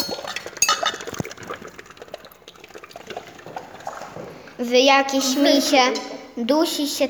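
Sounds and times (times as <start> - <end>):
liquid bubbling and gurgling in a kitchen pot: 0.0 - 5.3
speech: 4.6 - 7.0.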